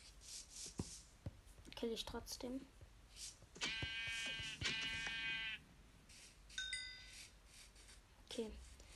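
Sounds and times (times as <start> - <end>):
speech: 1.8 - 2.8, 8.4 - 8.7
video game sheep bleating: 3.6 - 5.6.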